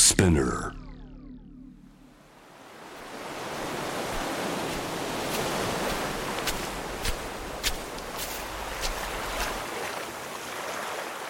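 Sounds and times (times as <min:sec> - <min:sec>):
speech: 0:00.1 - 0:00.8
waves breaking on a beach: 0:02.3 - 0:11.2
sharp splashes and crackles of surf: 0:02.9 - 0:11.2.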